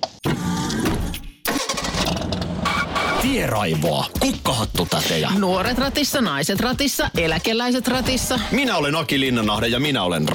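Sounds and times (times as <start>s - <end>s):
car engine starting: 0.5s - 3.2s
speech: 3.2s - 10.3s.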